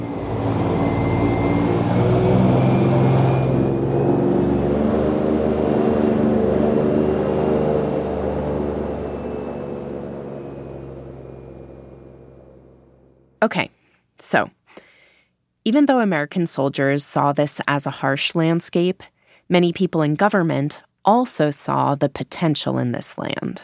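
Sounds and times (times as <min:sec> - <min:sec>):
fanboat engine revving while gliding over sawgrass: 0:00.0 - 0:13.4
speech: 0:13.4 - 0:14.6, 0:15.6 - 0:23.6.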